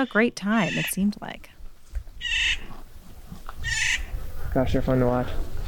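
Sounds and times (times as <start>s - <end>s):
birds giving harsh raspy calls in trees: 0.0s - 1.3s, 2.2s - 2.8s, 3.6s - 4.2s
speech: 0.0s - 1.6s, 4.5s - 5.5s.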